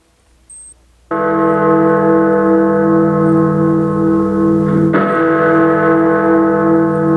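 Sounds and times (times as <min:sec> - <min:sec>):
large clock tower bell striking the hour: 0:01.1 - 0:07.1.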